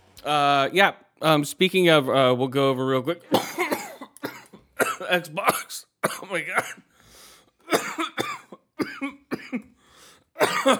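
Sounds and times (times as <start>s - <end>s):
speech: 0.2s - 3.6s, 5.1s - 6.9s, 10.4s - 10.7s
harsh raspy coughing fit: 3.2s - 6.9s, 7.7s - 9.8s, 10.4s - 10.7s.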